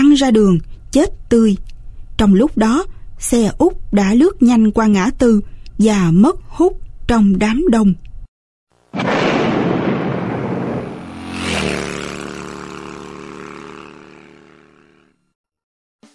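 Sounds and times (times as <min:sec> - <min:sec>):
speech: 0:00.2 - 0:08.1
grenade explosions in the streets of Saigon: 0:08.9 - 0:12.0
long rumbling roar: 0:09.0 - 0:14.5.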